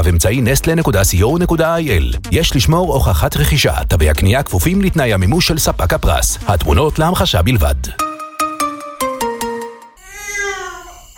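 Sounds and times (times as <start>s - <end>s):
speech: 0.0s - 8.0s
baby crying in wails: 10.0s - 11.1s.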